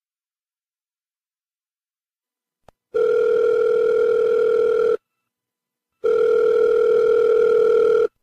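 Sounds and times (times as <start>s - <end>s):
electronic ringback tone from a phone line while placing a call: 3.0s - 5.0s, 6.0s - 8.1s.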